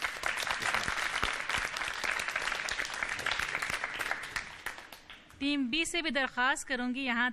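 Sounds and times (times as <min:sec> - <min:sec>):
loud audience applause: 0:00.0 - 0:05.2
speech: 0:05.4 - 0:07.3.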